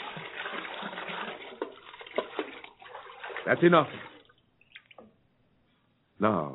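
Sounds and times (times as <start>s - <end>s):
water poured from buckets over a sacrifice on an altar: 0.0s - 5.1s
speech: 3.4s - 4.1s, 6.2s - 6.5s.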